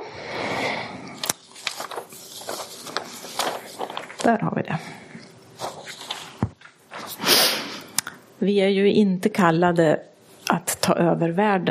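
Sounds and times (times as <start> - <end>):
papers being shuffled and turned over: 1.2 - 7.2
speech: 4.2 - 5.0, 8.4 - 11.6.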